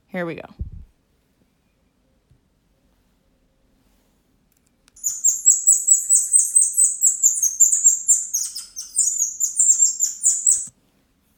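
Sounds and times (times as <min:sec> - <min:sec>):
golden lion tamarin giving shrill trilling calls: 0:05.0 - 0:10.7.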